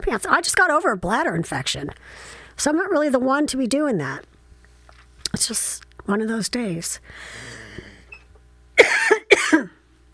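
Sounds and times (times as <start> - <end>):
speech: 0.1 - 4.3, 5.3 - 7.6
person coughing: 8.8 - 9.8.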